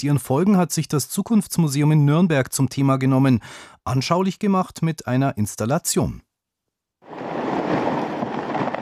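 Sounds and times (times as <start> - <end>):
speech: 0.0 - 6.3
glacier ice breaking apart: 7.2 - 8.8.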